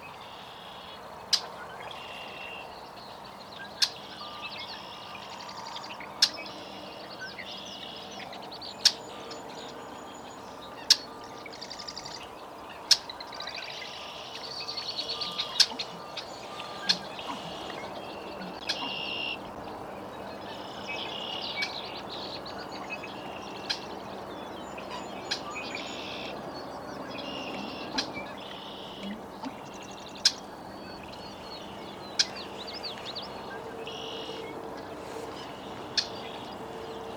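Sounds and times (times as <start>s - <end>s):
Red-winged Blackbird Agelaius phoeniceus calling: 0.2s - 37.1s.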